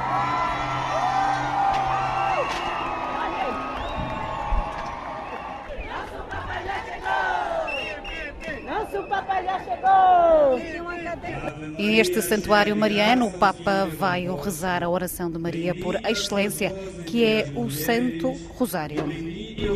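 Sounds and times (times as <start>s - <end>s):
jubilant crowd of faithful cheering and whooping at a Marian sanctuary: 0.0s - 10.8s
speech: 11.8s - 19.7s.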